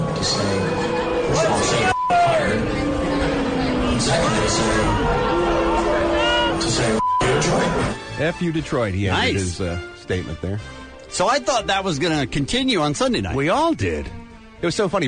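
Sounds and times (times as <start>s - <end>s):
large audience booing and hissing: 0.0s - 8.0s
speech: 0.2s - 0.6s, 8.2s - 15.0s.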